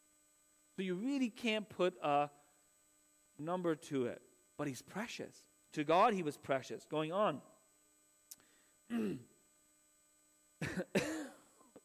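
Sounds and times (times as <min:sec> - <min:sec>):
faint electrical hum: 0:00.0 - 0:11.8
speech: 0:00.8 - 0:02.4, 0:03.4 - 0:07.5, 0:08.9 - 0:09.3
man clearing his throat: 0:08.9 - 0:09.3, 0:10.6 - 0:11.8
man coughing: 0:08.9 - 0:09.3, 0:10.6 - 0:11.8.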